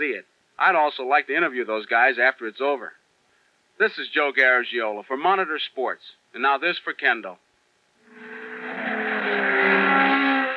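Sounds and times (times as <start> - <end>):
speech: 0.0 - 3.0, 3.8 - 7.4
high-performance racing engine revving: 8.1 - 10.5.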